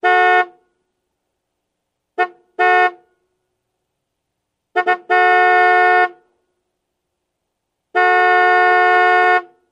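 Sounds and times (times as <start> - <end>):
large car horn honks: 0.0 - 0.7, 2.2 - 3.2, 4.7 - 6.3, 7.9 - 9.6.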